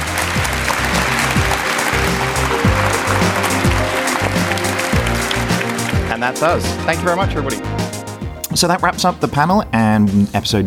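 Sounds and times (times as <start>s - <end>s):
crowd applauding: 0.0s - 8.1s
speech: 6.2s - 7.8s, 8.6s - 10.6s.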